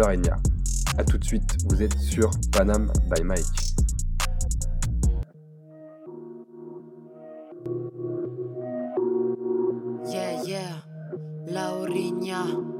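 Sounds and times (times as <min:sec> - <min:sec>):
speech: 0:00.0 - 0:04.0
punchy bass-heavy beat hits of a rap track intro: 0:00.0 - 0:05.2
sustained synth chords with a slow melodic line: 0:03.8 - 0:12.7.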